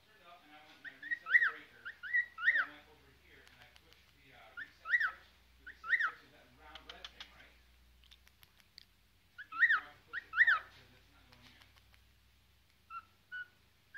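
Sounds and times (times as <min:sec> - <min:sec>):
cockatiel calling: 0:00.8 - 0:02.8, 0:04.5 - 0:06.3, 0:09.4 - 0:10.8, 0:12.8 - 0:13.9
faint clicks and rustles: 0:03.2 - 0:04.4, 0:06.6 - 0:09.0, 0:10.7 - 0:12.8.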